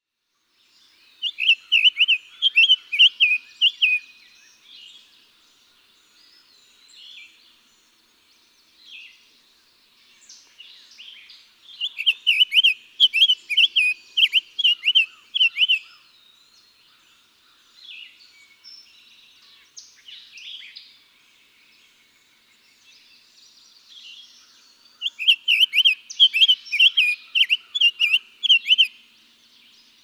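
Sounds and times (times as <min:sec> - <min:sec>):
Summer Tanager: 0:00.3 - 0:30.0.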